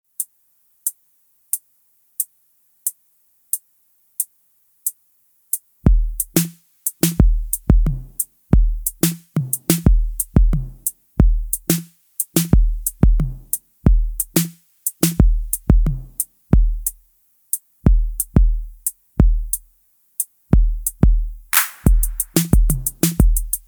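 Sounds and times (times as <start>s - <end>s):
drum machine track: 5.9s - 17.0s, 17.9s - 19.6s, 20.5s - 23.6s.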